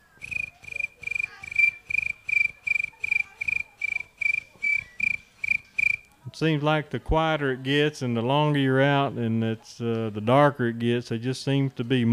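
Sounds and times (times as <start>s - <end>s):
crickets chirping at night: 0.0s - 6.1s
faint low noise: 0.0s - 12.1s
speech: 6.3s - 12.1s.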